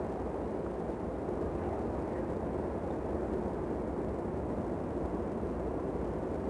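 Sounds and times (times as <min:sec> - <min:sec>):
wind in a canyon: 0:00.0 - 0:06.4.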